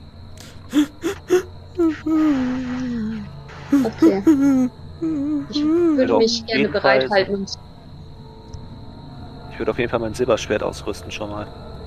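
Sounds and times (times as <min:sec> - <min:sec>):
faint steady hum: 0:00.0 - 0:11.8
soft whimpering: 0:00.5 - 0:07.3
speech: 0:02.0 - 0:02.6, 0:03.8 - 0:07.6, 0:09.6 - 0:11.7.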